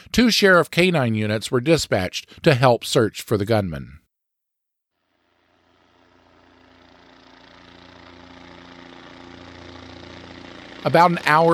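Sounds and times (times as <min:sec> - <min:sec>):
speech: 0:00.1 - 0:04.0, 0:10.8 - 0:11.5
police helicopter engine and rotor flying overhead: 0:05.1 - 0:11.5.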